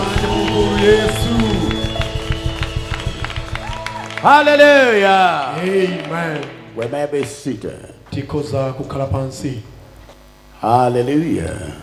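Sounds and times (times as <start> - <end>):
audience clapping rhythmically in a reverberant hall: 0.0 - 8.2
sustained organ-like tones: 0.0 - 11.8
speech: 4.2 - 9.7, 10.6 - 11.8.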